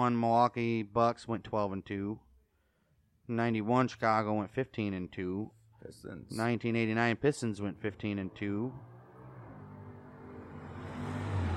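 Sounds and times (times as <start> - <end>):
speech: 0.0 - 2.3, 3.3 - 8.9
powerful car engine roaring past outside: 7.4 - 11.5.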